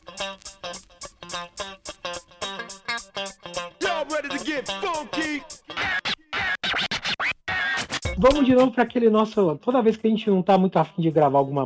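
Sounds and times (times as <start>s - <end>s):
turntable scratching by a DJ: 3.8s - 8.6s
speech: 8.2s - 11.6s.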